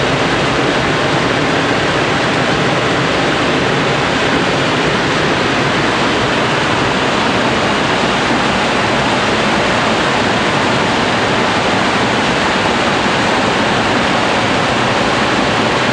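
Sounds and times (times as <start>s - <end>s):
water at a cliff: 0.0s - 15.9s.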